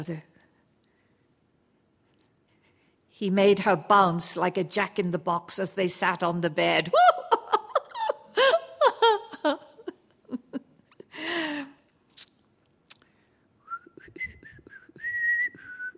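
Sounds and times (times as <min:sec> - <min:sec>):
speech: 0:00.0 - 0:00.3, 0:03.2 - 0:07.2, 0:09.4 - 0:09.6
giggling: 0:06.9 - 0:11.2
woman whistling a wavering tune: 0:13.6 - 0:15.9.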